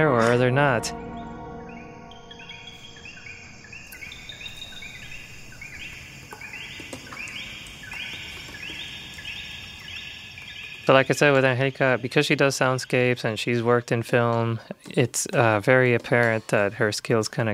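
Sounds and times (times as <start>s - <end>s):
speech: 0.0s - 1.1s, 10.9s - 17.5s
constant buzzing insect chorus: 0.0s - 13.5s
birds calling with bright chirps in a Puerto Rican field: 0.0s - 17.5s.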